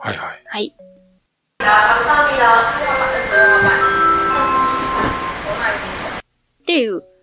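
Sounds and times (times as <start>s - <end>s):
speech: 0.0s - 0.8s
airport announcement chime with electronic tones in a reverberant hall: 1.6s - 6.2s
crowd murmur: 1.6s - 6.2s.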